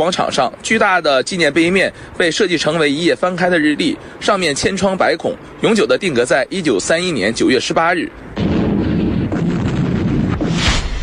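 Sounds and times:
speech: 0.0s - 8.6s
artillery and gunfire barrage: 8.4s - 11.0s.

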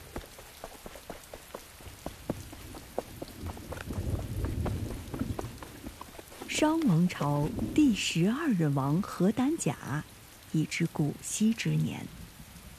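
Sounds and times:
sharp scattered drips and splashes: 0.0s - 10.6s
heavy rain pouring: 0.0s - 12.7s
low rumble: 2.3s - 8.2s
speech: 6.6s - 12.2s.

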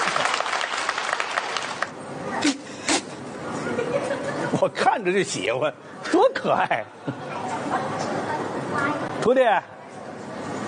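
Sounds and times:
live audience clapping: 0.0s - 2.0s
faint crowd voices: 1.8s - 10.6s
laughter: 3.5s - 4.9s
speech: 4.6s - 7.8s, 9.3s - 9.8s.

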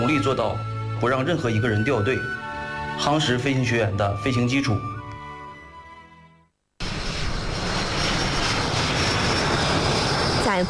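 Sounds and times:
speech: 0.0s - 2.4s, 3.0s - 4.9s
JL-8 trainer jets taking off from an air force flight academy airfield: 6.8s - 10.6s.

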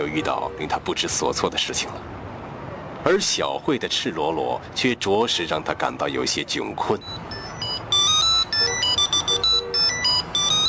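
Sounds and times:
speech: 0.0s - 2.2s, 3.0s - 7.2s
mobile phone ringing with electronic ringtone: 6.9s - 10.6s.

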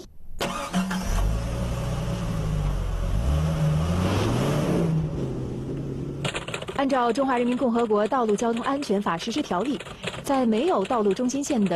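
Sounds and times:
car engine accelerating while pulling away at 30 km/h: 0.4s - 6.4s
road and tire noise: 0.4s - 10.3s
speech: 6.8s - 11.7s.

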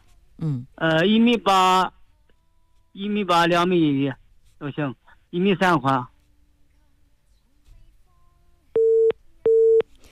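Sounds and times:
speech: 0.4s - 2.0s, 3.0s - 6.1s
phone busy tone after a call cuts off: 8.8s - 10.1s.

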